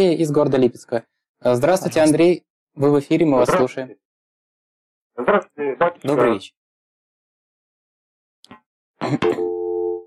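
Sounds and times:
speech: 0:00.0 - 0:04.0, 0:05.2 - 0:06.6, 0:08.5 - 0:09.5
steady telephone tone marking a dropped call on a phone-in line: 0:09.4 - 0:10.0.

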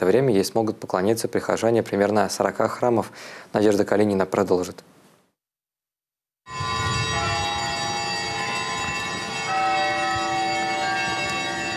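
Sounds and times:
speech: 0:00.0 - 0:05.0
cathedral church bells ringing a festive peal in Russia: 0:06.5 - 0:11.7.

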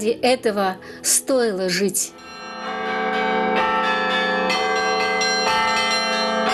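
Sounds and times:
speech: 0:00.0 - 0:02.9
church bell ringing: 0:02.1 - 0:06.5.

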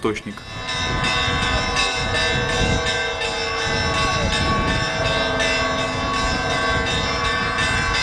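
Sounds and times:
speech: 0:00.0 - 0:01.2
loud church bells pealing: 0:00.1 - 0:08.0
low rumble of crowd or ambient noise: 0:00.4 - 0:08.0.

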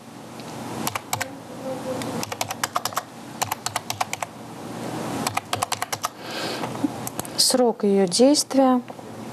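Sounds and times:
computer keyboard typing a card number: 0:00.9 - 0:01.3, 0:02.1 - 0:04.3, 0:05.3 - 0:06.2, 0:07.1 - 0:07.3
speech: 0:07.5 - 0:08.9.

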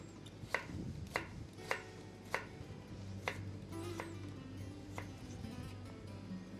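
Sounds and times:
low hum: 0:00.0 - 0:06.5
knife chopping carrot into julienne strips on a cutting board: 0:00.5 - 0:02.5, 0:03.2 - 0:03.4.

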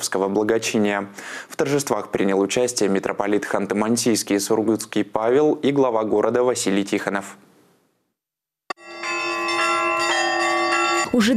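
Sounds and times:
speech: 0:00.1 - 0:07.5, 0:11.1 - 0:11.3
church bells ringing: 0:08.7 - 0:11.3.

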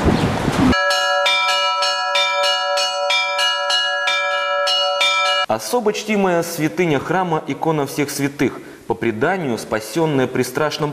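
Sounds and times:
old cast church bells ringing from a bell tower to call to service: 0:00.8 - 0:05.5
speech: 0:05.5 - 0:10.9.

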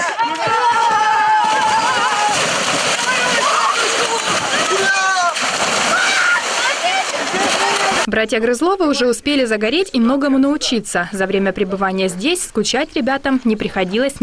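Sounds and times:
children shouting while playing in a river: 0:00.0 - 0:08.1
water splashing as children bathe in a river: 0:00.0 - 0:08.2
speech: 0:08.2 - 0:14.2.

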